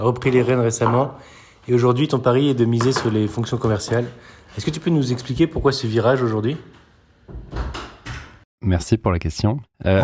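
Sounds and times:
speech: 0.0s - 7.7s, 8.6s - 10.0s
door swinging shut with two solid thuds: 6.6s - 8.4s.

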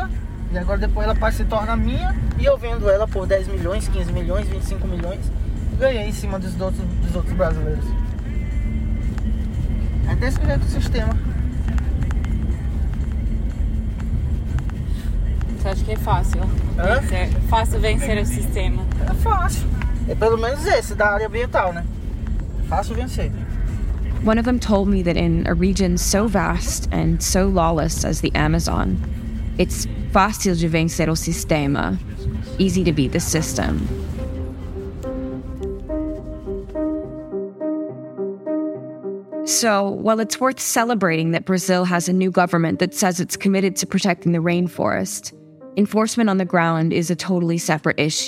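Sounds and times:
moving truck engine rumble on a muddy road in the Amazon: 0.0s - 37.5s
road noise from a truck on a muddy road: 0.0s - 48.2s
speech: 0.5s - 8.1s, 10.1s - 11.4s, 15.6s - 22.0s, 22.7s - 23.4s, 24.2s - 34.3s, 39.5s - 48.2s.

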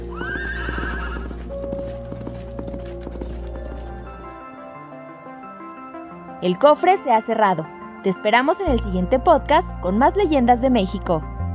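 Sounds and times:
horse neighing loudly: 0.0s - 3.5s
rapid galloping hoofbeats: 0.0s - 4.5s
speech: 6.4s - 11.3s.

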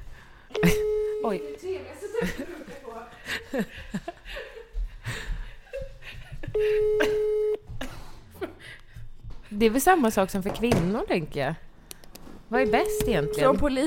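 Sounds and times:
telephone ringing tone: 0.5s - 1.6s, 6.6s - 7.6s, 12.6s - 13.8s
speech: 0.6s - 4.5s, 9.6s - 11.7s, 12.5s - 13.8s
laughter: 2.0s - 8.7s.

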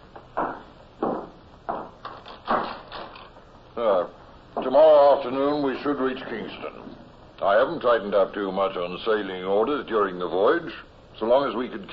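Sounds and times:
door being pushed shut: 0.4s - 3.3s
speech: 4.7s - 11.9s.

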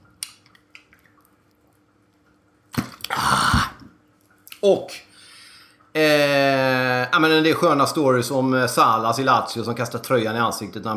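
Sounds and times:
person sipping and swallowing water: 2.8s - 4.0s
speech: 4.6s - 5.1s, 6.0s - 10.9s.

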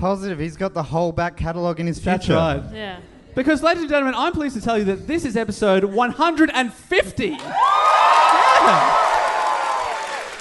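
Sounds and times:
speech: 0.0s - 8.0s, 8.7s - 9.0s
large live crowd cheering and whooping: 7.4s - 10.3s.

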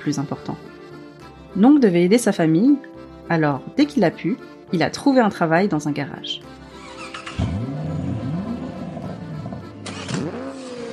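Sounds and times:
speech: 0.0s - 0.8s, 1.5s - 6.6s
car engine starting and revving in a garage: 6.6s - 10.9s.

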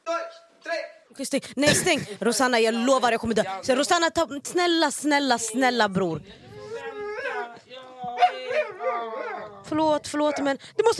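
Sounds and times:
speech: 1.2s - 6.4s, 9.7s - 10.9s
dog howling and whining: 6.5s - 10.5s.

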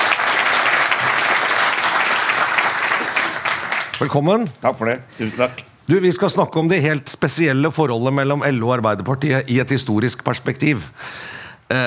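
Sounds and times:
sizable audience applauding: 0.0s - 4.4s
speech: 4.0s - 11.8s.

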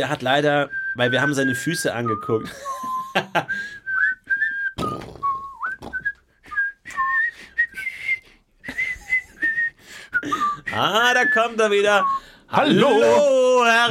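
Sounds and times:
speech: 0.0s - 3.8s, 10.8s - 13.8s
person whistling a melody: 0.6s - 13.1s.

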